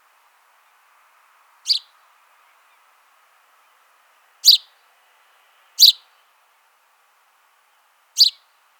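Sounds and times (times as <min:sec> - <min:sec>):
house sparrow, Passer domesticus, chirping: 0:01.6 - 0:02.0, 0:04.4 - 0:04.8, 0:05.8 - 0:06.1, 0:08.2 - 0:08.5.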